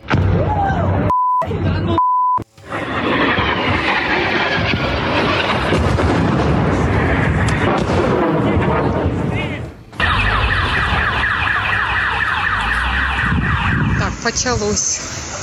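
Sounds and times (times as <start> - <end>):
explosions booming in a city centre: 0.0 - 1.9, 2.6 - 15.4
short beeps: 1.1 - 2.4
fire burning: 2.4 - 15.4
rockets racing past in a city centre: 2.6 - 15.4
car alarm wailing: 10.0 - 15.2
speech: 14.4 - 15.1.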